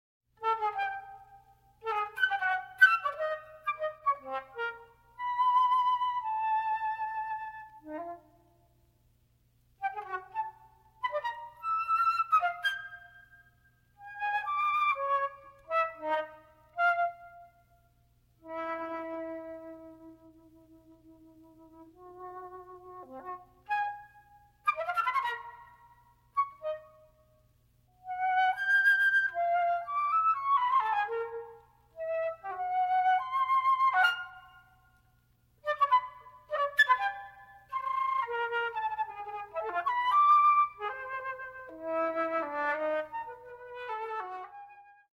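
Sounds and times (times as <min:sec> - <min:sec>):
solo flute: 0:00.4 - 0:08.8, 0:09.8 - 0:45.1.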